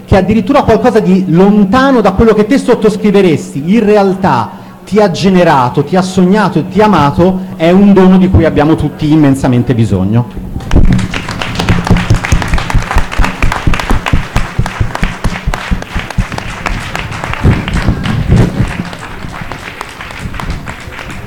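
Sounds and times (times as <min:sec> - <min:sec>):
speech: 0:00.1 - 0:11.1
audience standing ovation applause at an evening performance: 0:10.7 - 0:21.2.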